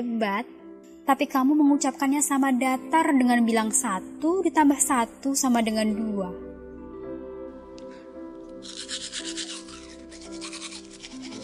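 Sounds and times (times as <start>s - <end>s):
speech: 0.0s - 6.6s, 8.6s - 9.3s
toothbrush scrubbing against teeth in a bathroom: 8.6s - 11.4s.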